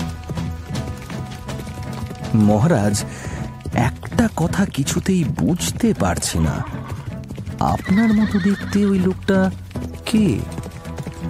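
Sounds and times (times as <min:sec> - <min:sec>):
hooves of carriage horses and mounted soldiers' horses clip-clopping: 0:00.0 - 0:11.2
speech: 0:02.3 - 0:06.9, 0:07.6 - 0:10.6.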